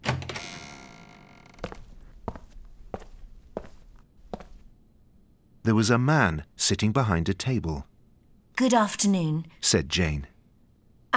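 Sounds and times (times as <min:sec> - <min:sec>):
door opening with a sharp clatter and lingering ring: 0:00.0 - 0:01.7
steady footsteps walking across a hard floor: 0:01.6 - 0:04.7
speech: 0:05.7 - 0:07.9, 0:08.6 - 0:10.3.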